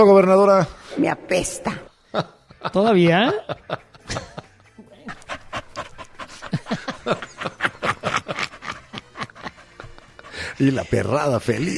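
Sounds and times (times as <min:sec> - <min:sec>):
speech: 0:00.0 - 0:04.4, 0:10.6 - 0:11.7
laughter: 0:02.1 - 0:11.7
dog panting: 0:05.1 - 0:11.6.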